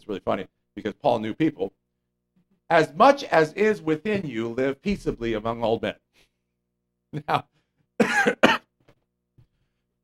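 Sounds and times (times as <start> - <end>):
speech: 0.1 - 1.8, 2.7 - 6.0, 7.1 - 8.6
person coughing after inhaling saliva: 8.0 - 8.8.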